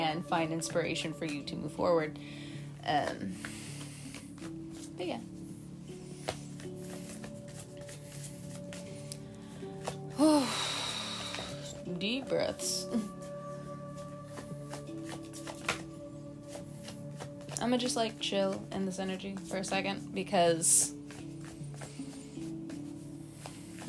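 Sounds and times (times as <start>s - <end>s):
speech: 0.1s - 3.6s, 4.4s - 5.4s, 10.2s - 10.7s, 11.9s - 13.2s, 17.6s - 21.0s
tarot cards being shuffled: 3.4s - 5.0s, 6.1s - 10.2s, 13.9s - 18.7s, 20.7s - 23.8s.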